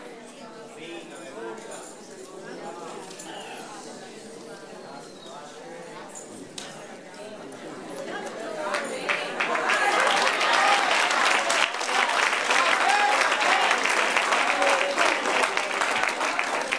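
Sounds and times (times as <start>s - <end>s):
faint voices: 0.0s - 16.7s
large church audience applauding: 8.7s - 16.7s.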